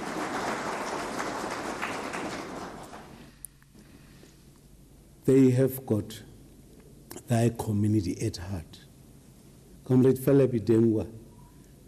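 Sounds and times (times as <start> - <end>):
audience applause: 0.0 - 3.3
speech: 5.3 - 6.3, 7.3 - 8.9, 9.9 - 11.2.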